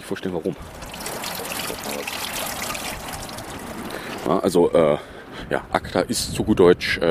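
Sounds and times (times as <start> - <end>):
rainwater splashing and trickling after rain: 0.0 - 4.6
speech: 0.1 - 1.0, 4.2 - 7.0.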